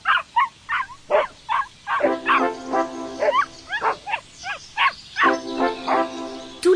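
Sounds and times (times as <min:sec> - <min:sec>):
dog barking excitedly: 0:00.0 - 0:02.6, 0:03.2 - 0:06.0.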